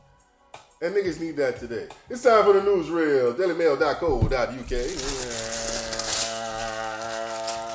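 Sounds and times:
speech: 0.8 - 5.5
paper crumpling: 4.6 - 7.7.

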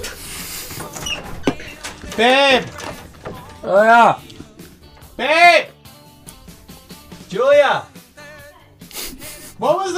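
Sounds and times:
door being opened: 0.0 - 5.7
door latch or frame clack: 0.7 - 5.3
speech: 2.2 - 2.8, 3.6 - 4.3, 5.2 - 5.7, 7.3 - 7.9, 9.6 - 9.9.

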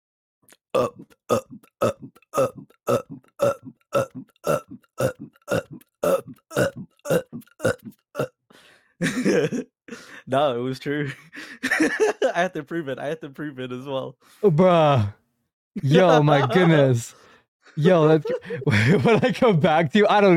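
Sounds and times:
speech: 0.7 - 3.1, 10.3 - 15.2, 15.8 - 17.2, 17.8 - 20.3
person burping: 0.7 - 8.4
longer rough belch: 0.8 - 8.4
laughter: 9.0 - 9.6, 11.0 - 12.6, 15.8 - 17.1, 17.8 - 19.6.

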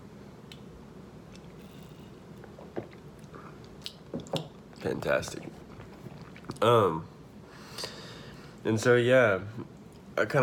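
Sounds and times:
low hum: 0.0 - 10.4
soft slurps and wet mouth clicks: 1.3 - 6.7
person sipping hot coffee from a cup: 1.4 - 7.0
speech: 4.8 - 5.6, 6.6 - 7.1, 8.6 - 10.4.

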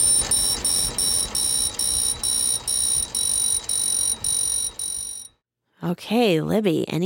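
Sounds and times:
shrill electronic beeps from a fluorometer xenon lamp: 0.0 - 5.3
speech: 5.8 - 7.0.

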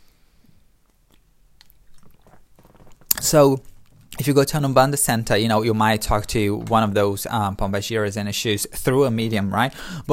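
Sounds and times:
person sipping tea: 0.1 - 4.0
speech: 3.2 - 10.1.

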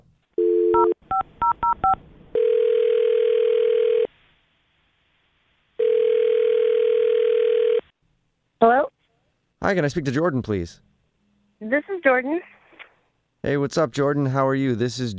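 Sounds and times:
phone ringing with long steady tones: 0.4 - 4.1, 5.8 - 7.9
telephone dial tone: 0.4 - 4.1, 5.8 - 7.8
speech: 9.7 - 10.9, 11.7 - 12.6, 13.4 - 15.1.

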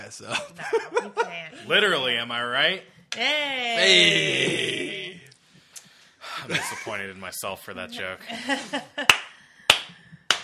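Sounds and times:
speech: 0.0 - 5.2, 6.4 - 9.2
sharp crisp hand claps: 9.0 - 10.4.

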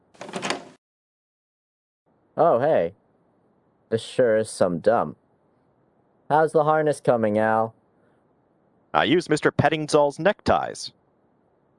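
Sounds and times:
door opening with rattling scrape: 0.1 - 0.8
speech: 2.4 - 3.0, 3.9 - 5.2, 6.3 - 7.8, 8.9 - 11.0.

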